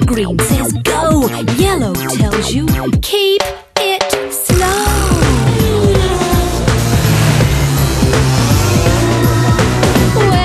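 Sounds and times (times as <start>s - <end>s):
speech: 0.1s - 3.6s
busy stream of cars zooming past: 4.9s - 10.3s.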